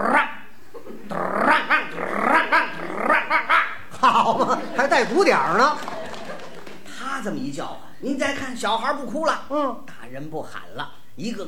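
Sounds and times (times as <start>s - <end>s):
man imitating a dog barking: 0.0s - 0.5s, 1.1s - 4.2s
man imitating a dog growling: 0.0s - 4.2s
laughter: 0.8s - 7.0s
speech: 4.1s - 5.9s, 7.2s - 11.4s.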